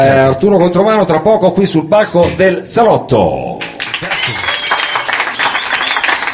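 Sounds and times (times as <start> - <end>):
speech: 0.0 - 3.6
audience applause: 3.7 - 6.3.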